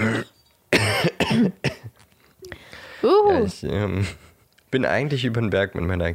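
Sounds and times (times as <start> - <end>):
person coughing harshly: 0.0 - 1.9
speech: 3.4 - 6.1.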